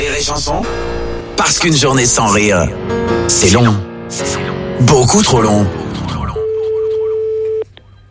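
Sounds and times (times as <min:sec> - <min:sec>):
speech: 0:00.2 - 0:05.8
ringing tone of an outgoing telephone call: 0:06.3 - 0:07.7.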